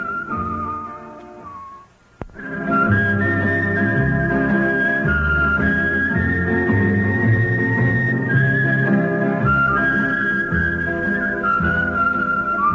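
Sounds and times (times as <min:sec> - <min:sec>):
steady instrumental backing: 0:00.0 - 0:12.7
whistled folk song melody: 0:00.0 - 0:12.7.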